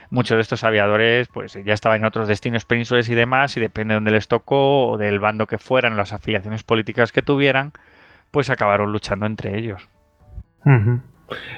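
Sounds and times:
speech: 0:00.1 - 0:10.0, 0:10.6 - 0:11.5
person sneezing with a voiced intake and hissing burst of air: 0:10.7 - 0:11.5.

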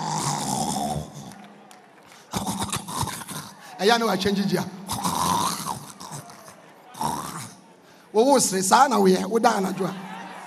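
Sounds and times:
person imitating heavy snoring: 0:00.0 - 0:01.4, 0:02.3 - 0:03.6, 0:04.9 - 0:07.6
speech: 0:03.8 - 0:04.8, 0:08.2 - 0:10.0.

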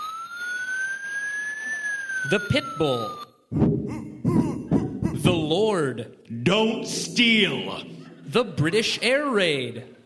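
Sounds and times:
car alarm imitating police car siren: 0:00.0 - 0:05.0, 0:06.9 - 0:08.4
speech: 0:02.2 - 0:04.4, 0:05.8 - 0:10.0.

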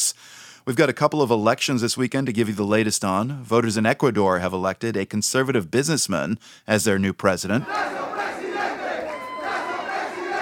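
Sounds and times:
speech: 0:00.7 - 0:08.0
crowd cheering at a presidential election victory speech in Ecuador: 0:07.6 - 0:10.3.

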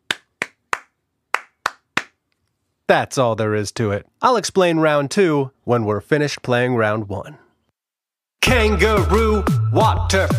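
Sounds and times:
hand claps clapping back the rhythm of spoken words in a memory game: 0:00.0 - 0:02.2
speech: 0:02.9 - 0:07.4, 0:08.4 - 0:10.3.

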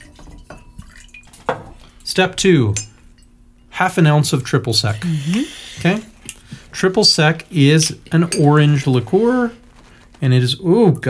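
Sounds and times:
mixing glass clinking: 0:00.0 - 0:01.9, 0:02.7 - 0:03.7, 0:08.1 - 0:09.0
gin trickling into a mixing glass: 0:00.0 - 0:02.0
speech: 0:02.1 - 0:02.9, 0:03.8 - 0:06.1, 0:06.8 - 0:09.6, 0:10.2 - 0:11.0.

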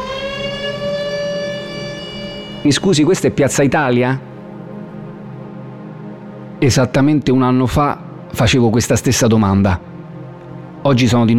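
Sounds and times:
factory siren wailing in Colleferro Italy: 0:00.0 - 0:03.7
speech: 0:02.6 - 0:04.3, 0:06.6 - 0:09.9, 0:10.8 - 0:11.3.

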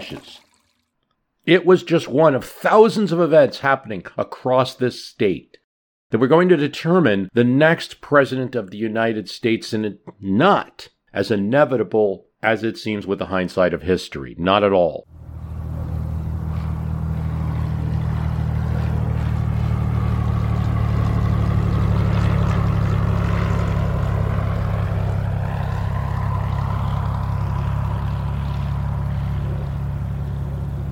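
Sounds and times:
speech: 0:00.0 - 0:00.5, 0:01.5 - 0:15.2
small chartered propeller airplane taxiing: 0:15.1 - 0:30.9.

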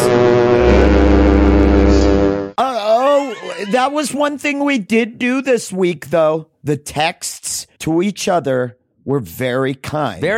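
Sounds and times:
foghorn blast: 0:00.0 - 0:02.5
laughter: 0:02.8 - 0:04.2
speech: 0:03.7 - 0:10.3.

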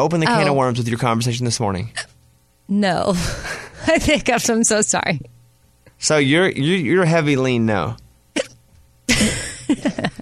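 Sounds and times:
speech: 0:00.0 - 0:05.3, 0:06.0 - 0:08.5, 0:09.1 - 0:10.2
person hiccuping: 0:08.3 - 0:08.6.

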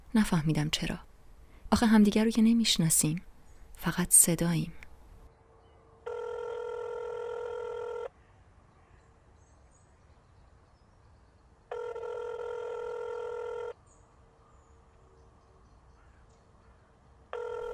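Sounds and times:
faint outdoor noise: 0:00.0 - 0:17.7
speech: 0:00.1 - 0:01.1, 0:01.7 - 0:04.8
telephone ringing in long electronic bursts: 0:06.1 - 0:08.1, 0:11.7 - 0:13.8, 0:17.4 - 0:17.7.

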